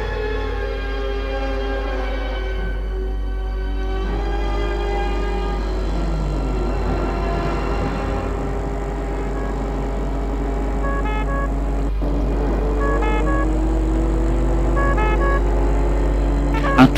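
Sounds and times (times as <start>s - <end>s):
car and ambulance engines rumbling on arrival at a château: 0.0s - 16.9s
car horns honking: 3.7s - 16.9s.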